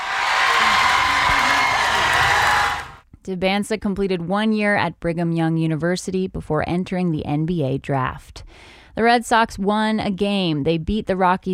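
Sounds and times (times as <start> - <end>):
crowd of students cheering and shouting at a draft watch party: 0.0 - 3.0
speech: 3.2 - 11.5.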